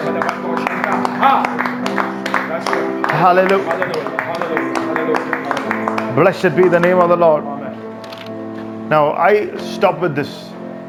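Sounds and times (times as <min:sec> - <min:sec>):
church audience clapping hands as a clap offering: 0:00.0 - 0:07.3
speech: 0:01.2 - 0:01.6, 0:03.2 - 0:05.3, 0:06.2 - 0:07.5, 0:08.9 - 0:10.5.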